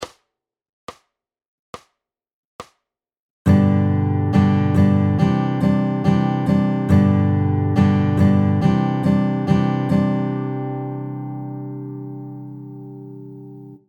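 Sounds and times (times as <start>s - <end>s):
ballad strumming with varying strum patterns: 3.5s - 13.8s.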